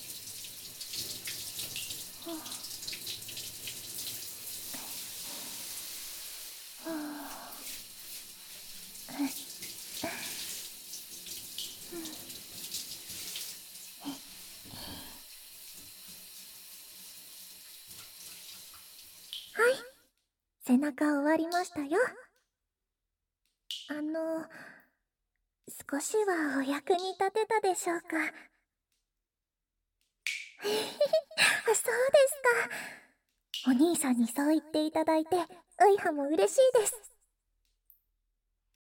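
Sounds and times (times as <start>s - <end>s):
running water rinsing soap foam off arms: 0.0s - 19.6s
speech: 2.3s - 2.6s, 20.7s - 22.2s, 25.9s - 28.5s, 30.6s - 33.0s, 33.6s - 37.1s.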